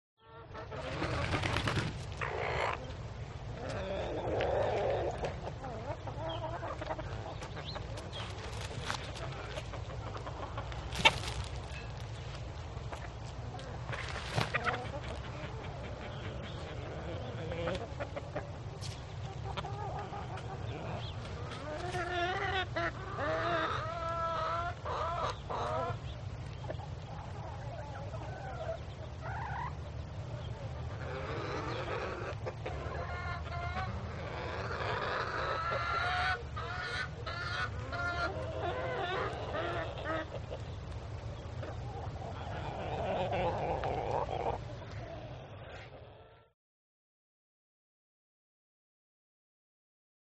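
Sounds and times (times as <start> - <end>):
chickens cackling: 0.2 - 46.5.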